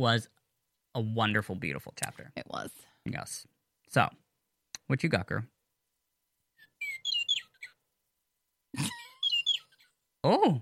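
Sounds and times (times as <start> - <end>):
speech: 0.0 - 0.4, 1.0 - 4.2, 4.9 - 5.5, 10.2 - 10.6
small pet bird chirping: 6.6 - 7.9, 8.8 - 10.0.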